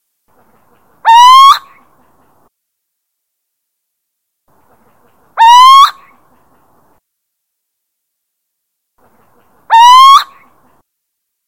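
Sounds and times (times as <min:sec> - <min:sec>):
little owl territorial calls: 0:01.0 - 0:01.8, 0:05.4 - 0:06.1, 0:09.7 - 0:10.4.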